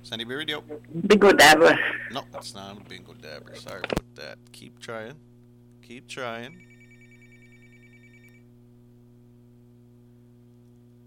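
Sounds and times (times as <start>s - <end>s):
speech: 0.0s - 6.7s
steady low electrical hum: 0.0s - 11.0s
telephone ringing with a fast warbling trill: 6.6s - 8.4s.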